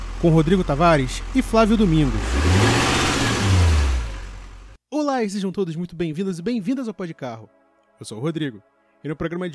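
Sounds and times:
heavy diesel engine starting and revving: 0.0s - 4.8s
speech: 0.2s - 2.4s, 5.0s - 9.5s.

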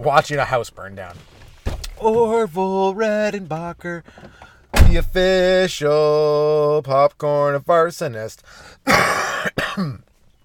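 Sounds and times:
speech: 0.0s - 1.4s, 2.0s - 10.0s
harsh raspy cough from smoking a bong: 8.8s - 10.1s.

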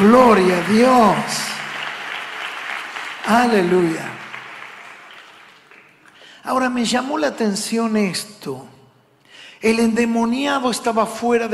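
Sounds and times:
congregation applauding: 0.0s - 6.2s
speech: 0.1s - 1.4s, 3.3s - 4.1s, 6.4s - 8.7s, 9.6s - 11.5s.

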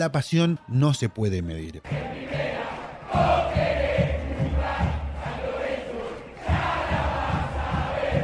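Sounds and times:
speech: 0.0s - 2.5s
stadium crowd of Argentine football fans singing chants: 1.8s - 8.2s
steady low pulse of drums or stamping: 1.9s - 8.2s.

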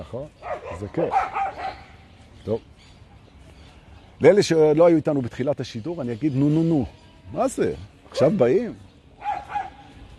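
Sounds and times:
speech: 0.0s - 1.8s, 2.4s - 2.9s, 4.2s - 8.9s
dog barking near a dog park: 0.4s - 2.0s, 9.2s - 9.9s.

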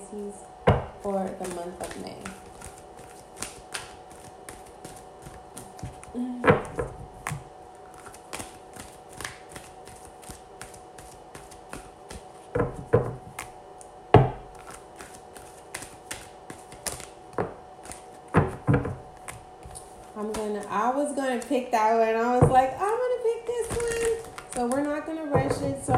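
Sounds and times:
low steady hum: 0.0s - 25.9s
speech: 0.1s - 0.5s, 1.1s - 2.4s, 6.2s - 7.0s, 21.5s - 22.8s
tarot cards shuffling with riffles and flicks: 1.4s - 6.1s, 6.7s - 13.9s, 14.5s - 17.2s, 17.8s - 18.3s, 22.9s - 25.0s.

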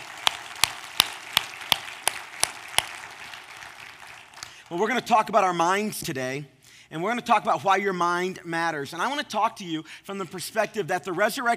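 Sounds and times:
room of people applauding together: 0.0s - 5.0s
soft crowd noise: 0.0s - 9.6s
speech: 4.7s - 11.5s.

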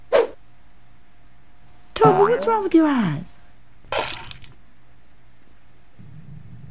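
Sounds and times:
speech: 2.0s - 3.4s
water poured or sloshing in a vase: 3.9s - 4.6s.

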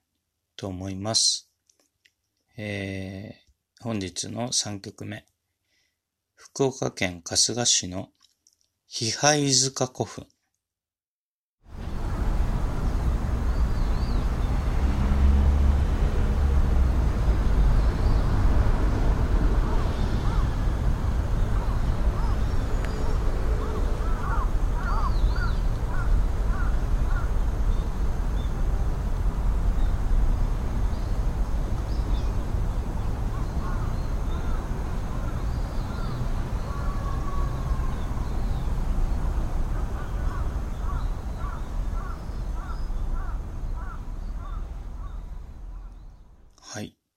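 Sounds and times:
speech: 0.6s - 1.5s, 2.6s - 5.3s, 6.4s - 8.2s, 8.9s - 10.4s
wind at burial mound site in Kasuga, Fukuoka Prefecture, Japan: 11.7s - 46.5s
crows cawing at burial mound site in Kasuga, Fukuoka Prefecture, Japan: 20.2s - 20.6s, 21.6s - 22.6s, 23.5s - 27.4s, 33.3s - 38.3s, 39.7s - 46.1s.

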